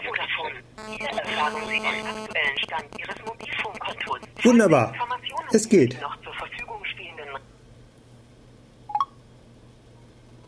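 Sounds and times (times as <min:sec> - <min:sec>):
electronic phone beeps and tones of a call being hung up: 0:00.8 - 0:04.5
speech: 0:00.8 - 0:06.2.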